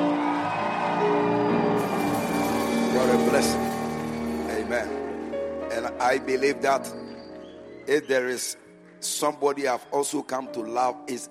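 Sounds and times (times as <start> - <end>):
large crowd at a religious gathering screaming and cheering: 0.0 - 10.4
sustained musical tones: 1.7 - 8.0
speech: 3.1 - 3.7, 6.0 - 7.1, 7.9 - 11.2.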